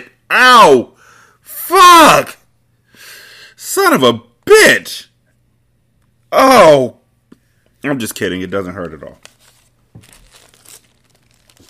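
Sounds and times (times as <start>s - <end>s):
speech: 0.0s - 0.9s, 1.7s - 2.4s, 3.7s - 5.1s, 6.3s - 7.0s, 7.8s - 9.3s
paper money bills crinkling: 8.6s - 11.6s.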